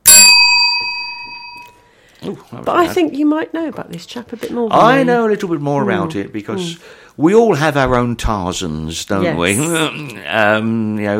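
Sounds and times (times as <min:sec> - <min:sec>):
small bell ding: 0:00.0 - 0:01.8
speech: 0:02.2 - 0:11.1.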